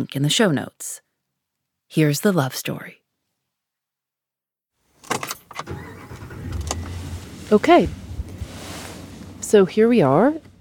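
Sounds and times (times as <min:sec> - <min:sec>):
speech: 0:00.0 - 0:01.0, 0:01.9 - 0:03.0, 0:07.5 - 0:08.0, 0:09.5 - 0:10.5
sharp clunks and rattles: 0:05.0 - 0:07.4
pickup truck engine running while driving: 0:05.2 - 0:09.5.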